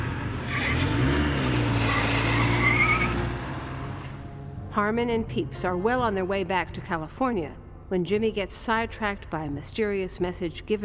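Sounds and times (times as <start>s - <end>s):
car tyres skidding and squealing: 0.0s - 4.1s
car engine revving as it speeds off in a getaway: 0.0s - 4.5s
speech: 4.8s - 10.8s.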